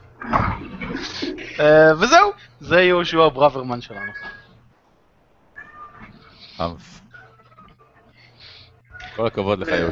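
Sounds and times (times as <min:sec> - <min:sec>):
speech: 0:01.6 - 0:04.4, 0:06.6 - 0:07.0, 0:09.2 - 0:09.9
cat meowing: 0:05.6 - 0:06.3.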